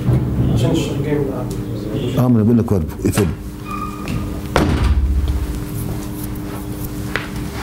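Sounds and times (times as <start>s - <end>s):
steady hum: 0.0s - 7.6s
speech: 0.6s - 3.5s
door shutting with a thump: 4.1s - 5.5s.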